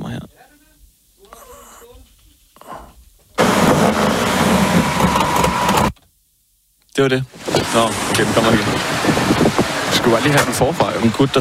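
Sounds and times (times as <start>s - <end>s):
car engine starting with a loud rough roar: 3.4s - 5.9s, 7.3s - 11.3s
speech: 7.0s - 9.4s, 10.0s - 11.3s.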